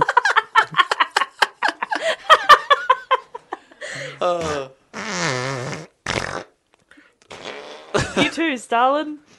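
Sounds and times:
laughter: 0:00.0 - 0:04.0
speech: 0:04.2 - 0:04.5, 0:08.3 - 0:09.3
buzzy fart noises with wobbling pitch: 0:04.3 - 0:06.6, 0:07.2 - 0:08.1.

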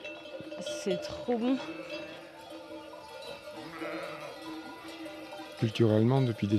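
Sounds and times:
faint clinking bells: 0:00.0 - 0:06.5
speech: 0:00.8 - 0:02.1, 0:05.6 - 0:06.5
flock of sheep bleating while moving on transhumance: 0:01.5 - 0:02.3, 0:03.5 - 0:05.6.

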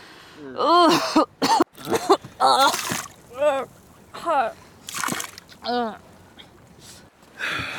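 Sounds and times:
seasick girl retching and vomiting over the side of a sailboat: 0:00.8 - 0:06.0
wet splattering of vomit: 0:01.8 - 0:06.1.

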